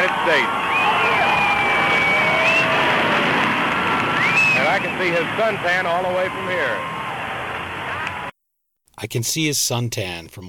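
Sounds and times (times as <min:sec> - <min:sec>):
whistles and whoops: 0:00.0 - 0:03.2, 0:03.9 - 0:05.2
large outdoor crowd yelling and cheering: 0:00.0 - 0:08.3
speech: 0:00.2 - 0:00.7, 0:04.8 - 0:07.0, 0:09.0 - 0:10.4.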